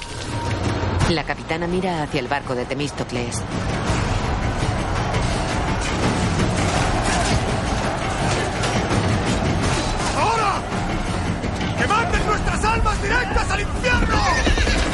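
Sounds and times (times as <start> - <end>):
speech: 1.1 - 4.1
crowd shouting in a battle: 2.7 - 14.9
horse neighing shrilly in a battle: 14.2 - 14.9.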